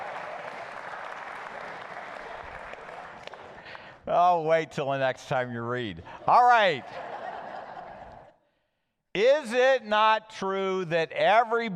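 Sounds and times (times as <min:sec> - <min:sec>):
crowd applauding: 0:00.0 - 0:03.9
speech: 0:04.1 - 0:07.1, 0:09.2 - 0:11.7
laughter: 0:06.1 - 0:08.4.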